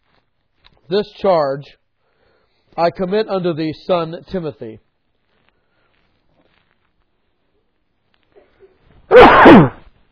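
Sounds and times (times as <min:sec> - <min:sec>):
speech: 0:00.9 - 0:01.8, 0:02.8 - 0:04.8
man sneezing during a scripture reading: 0:09.1 - 0:09.9.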